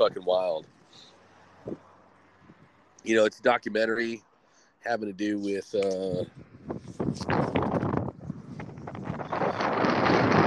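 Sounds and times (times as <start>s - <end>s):
speech: 0.0s - 1.8s, 3.0s - 7.5s
wind blowing outdoors and buffeting the microphone: 5.8s - 10.4s.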